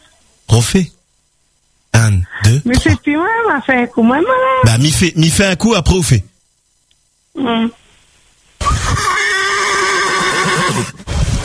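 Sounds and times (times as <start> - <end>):
speech: 0.6 - 1.0, 2.0 - 6.3, 7.4 - 7.8, 10.8 - 11.0
person imitating horse whinny: 8.6 - 11.0.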